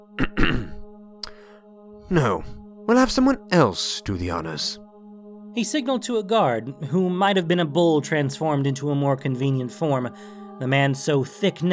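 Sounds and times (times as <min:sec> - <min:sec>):
man clearing his throat: 0:00.2 - 0:01.4
speech: 0:02.1 - 0:04.8, 0:05.6 - 0:11.7.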